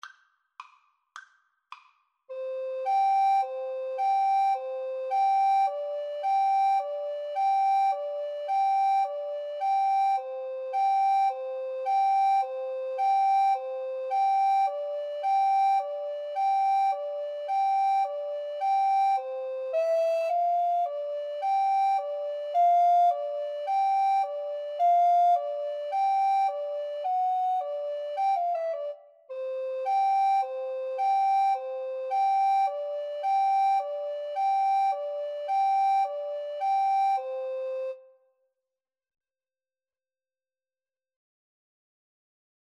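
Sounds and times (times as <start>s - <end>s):
recorder duet playing a Mexican dance tune: 2.3s - 38.0s.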